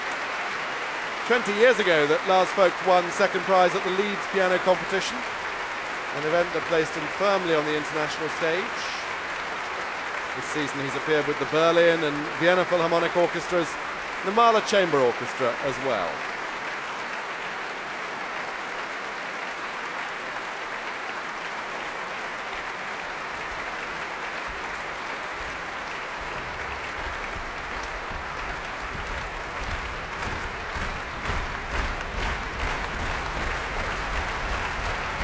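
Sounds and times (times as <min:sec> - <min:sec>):
concert audience rhythmic slow hand clap: 0:00.0 - 0:35.2
large concert audience applauding: 0:00.0 - 0:35.2
speech: 0:01.3 - 0:05.4, 0:06.1 - 0:09.0, 0:10.4 - 0:16.3
concert audience stamping feet: 0:24.5 - 0:35.2.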